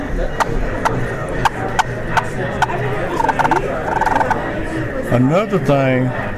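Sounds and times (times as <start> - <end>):
speech: 0.2 - 0.5, 5.1 - 6.2
wild turkey clucking and rattling: 0.4 - 4.4.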